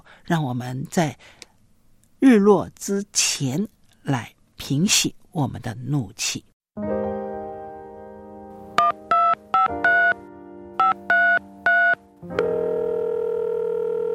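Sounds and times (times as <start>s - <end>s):
speech: 0.3s - 1.4s, 2.2s - 7.0s
touch-tone beeps of a number being dialed: 8.8s - 10.2s, 10.8s - 12.0s
telephone dial tone: 10.8s - 14.1s.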